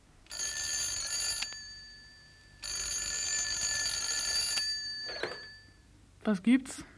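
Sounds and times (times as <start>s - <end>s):
electronic telephone ringing in an office: 0.3s - 5.8s
speech: 6.3s - 6.9s.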